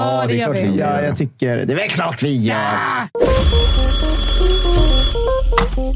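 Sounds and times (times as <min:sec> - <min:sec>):
speech: 0:00.0 - 0:05.9
electronic phone ringtone for incoming call: 0:03.2 - 0:05.6.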